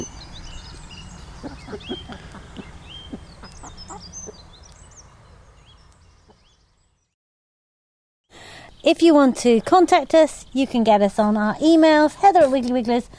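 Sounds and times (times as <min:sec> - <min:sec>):
higher chirping birds: 0:00.0 - 0:07.2, 0:08.4 - 0:13.1
speech: 0:01.4 - 0:02.4, 0:08.8 - 0:13.1
hens clucking: 0:01.4 - 0:04.5.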